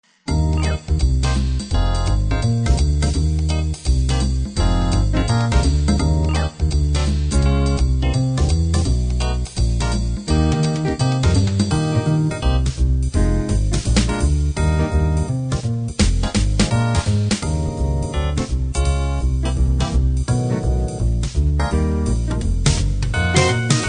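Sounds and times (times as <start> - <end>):
jazz on a B3 organ: 0.3 - 23.8.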